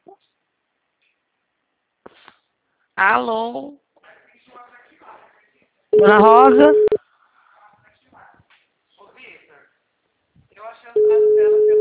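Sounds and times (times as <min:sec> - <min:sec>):
speech: 0:03.0 - 0:03.8, 0:06.0 - 0:06.8
telephone busy signal: 0:06.0 - 0:07.0, 0:11.0 - 0:11.7
voice speaking on the phone line: 0:06.0 - 0:07.0, 0:11.0 - 0:11.7.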